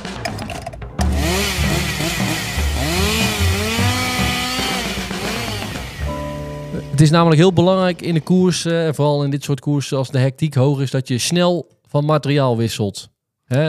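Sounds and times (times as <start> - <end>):
chainsaw engine revving up and down: 1.0 - 6.9
speech: 7.0 - 13.6.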